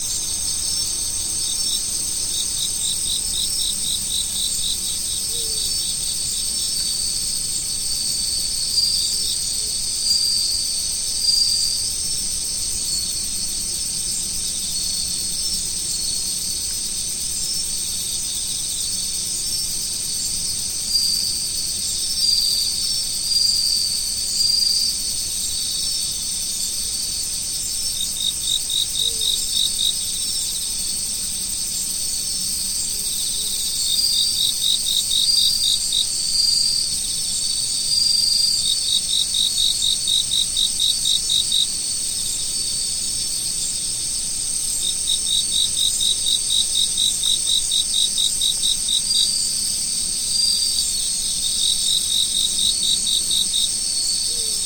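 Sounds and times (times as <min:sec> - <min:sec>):
autumn insects chirping: 0:00.0 - 0:54.6.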